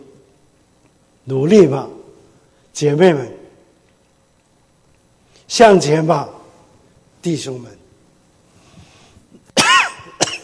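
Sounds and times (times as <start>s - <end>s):
speech: 1.3s - 2.0s, 2.8s - 3.4s, 5.5s - 6.4s, 7.2s - 7.8s
person coughing harshly with a rasping tail: 9.6s - 10.4s.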